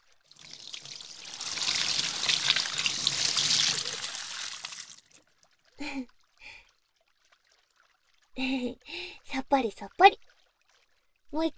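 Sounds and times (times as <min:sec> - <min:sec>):
water pouring to rinse off foam: 0:00.3 - 0:05.2
speech: 0:09.6 - 0:10.3, 0:11.3 - 0:11.5.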